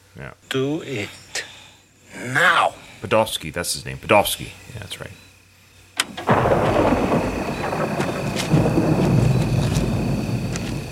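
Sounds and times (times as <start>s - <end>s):
speech: 0.2s - 1.2s, 2.1s - 5.2s
thunder crack and rumble in a storm: 6.1s - 10.9s.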